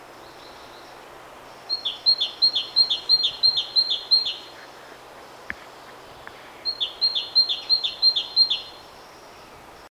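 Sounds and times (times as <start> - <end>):
great tit Parus major singing: 0.2 - 4.8, 5.4 - 9.6.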